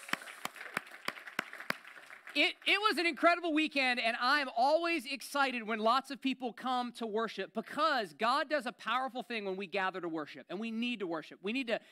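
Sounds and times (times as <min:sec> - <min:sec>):
hands clapping: 0:00.0 - 0:02.9
speech: 0:02.3 - 0:11.9.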